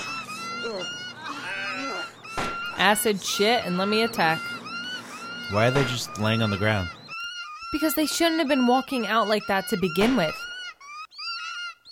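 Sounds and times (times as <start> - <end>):
computer-generated birds letting out honking goose-like cries in a film: 0.0 - 11.8
speech: 0.6 - 1.5, 2.8 - 4.6, 5.5 - 7.0, 7.7 - 10.4.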